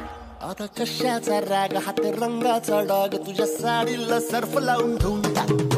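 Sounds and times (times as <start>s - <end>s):
Marathi song ringtone: 0.7s - 5.6s.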